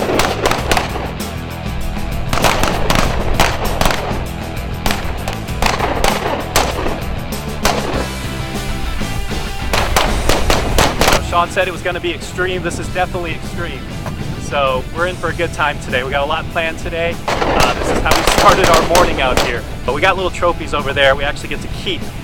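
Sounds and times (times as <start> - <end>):
rifles and handguns firing at an outdoor shooting range in Phoenix, Arizona: 0.0 - 8.3, 9.6 - 11.4, 17.2 - 20.2
speech: 11.4 - 22.2.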